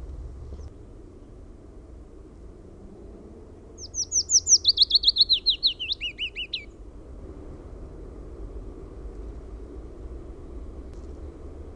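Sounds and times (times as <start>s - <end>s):
faint low rumble: 0.0s - 11.7s
willow warbler singing a flowing descending phrase: 3.7s - 6.9s.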